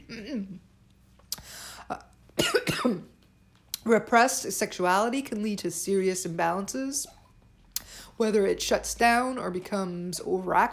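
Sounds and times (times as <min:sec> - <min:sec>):
person coughing: 0:00.0 - 0:00.6, 0:02.4 - 0:03.1
speech: 0:00.1 - 0:00.7, 0:01.9 - 0:02.1, 0:02.8 - 0:03.1, 0:03.8 - 0:07.2, 0:08.2 - 0:10.7.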